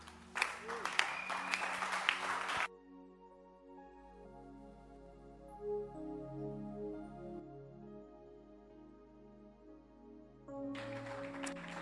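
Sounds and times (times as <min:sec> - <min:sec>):
crowd clapping: 0:00.0 - 0:02.7, 0:10.6 - 0:11.7
organ-like music: 0:00.0 - 0:11.7.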